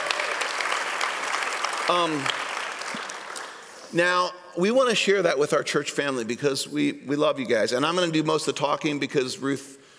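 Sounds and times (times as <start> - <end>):
church audience applauding: 0.0 - 3.9
speech: 1.9 - 2.4, 3.9 - 9.8.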